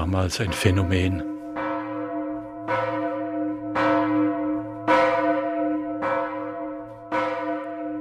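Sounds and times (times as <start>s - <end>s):
speech: 0.0s - 1.3s
large 1038 cast church bell in Bad Hersfeld Germany tolling: 0.0s - 7.9s.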